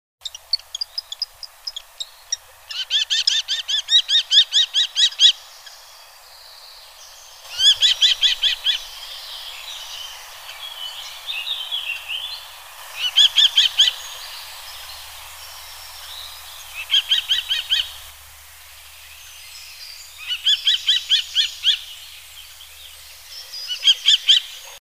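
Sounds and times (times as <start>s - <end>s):
common kestrel calling: 0.2s - 5.8s, 7.1s - 18.1s, 20.1s - 22.0s.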